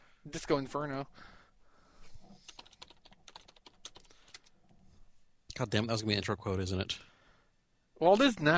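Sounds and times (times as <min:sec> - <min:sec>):
speech: 0:00.2 - 0:01.4, 0:05.6 - 0:07.1, 0:08.0 - 0:08.5
typing on a computer keyboard in a Skype chat: 0:02.4 - 0:04.6.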